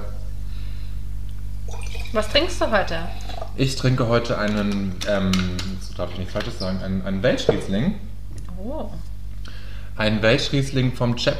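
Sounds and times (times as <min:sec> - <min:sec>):
steady low electrical hum: 0:00.0 - 0:11.3
soda water poured into wine in a wine glass fizzing: 0:01.7 - 0:03.6
speech: 0:02.1 - 0:09.1, 0:10.0 - 0:11.3.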